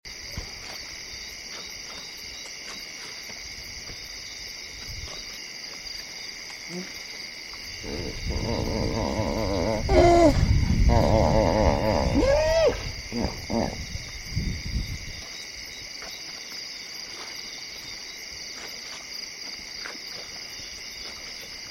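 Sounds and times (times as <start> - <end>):
hippo grunt at night: 7.8 - 14.1.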